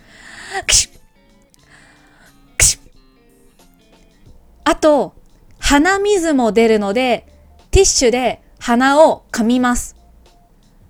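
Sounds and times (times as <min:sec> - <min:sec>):
person sneezing: 0:00.0 - 0:01.0, 0:02.6 - 0:02.9
short breathy intake before a sneeze: 0:00.0 - 0:01.0
speech: 0:00.6 - 0:01.0, 0:04.8 - 0:10.0.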